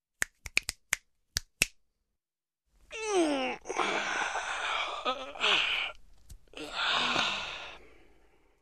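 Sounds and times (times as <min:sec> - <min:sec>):
finger snap: 0:00.2 - 0:01.8
person sighing: 0:02.9 - 0:08.2.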